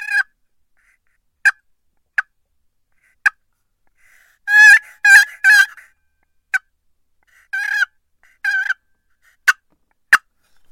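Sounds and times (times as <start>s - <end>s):
turkey call raspy yelps: 0.0s - 0.3s, 4.5s - 5.9s, 7.5s - 8.8s
turkey call sharp single clucks: 0.0s - 1.6s, 4.5s - 5.9s, 7.3s - 10.3s.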